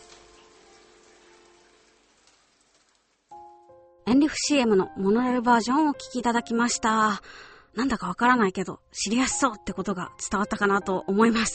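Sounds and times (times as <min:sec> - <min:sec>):
steady rain falling: 0:00.0 - 0:03.6
speech: 0:04.1 - 0:11.5.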